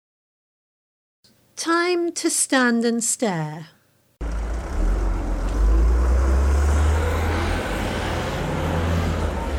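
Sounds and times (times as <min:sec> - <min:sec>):
speech: 0:01.6 - 0:03.8
city bus engine rumble: 0:04.2 - 0:09.5
road noise inside a moving city bus: 0:04.2 - 0:09.5.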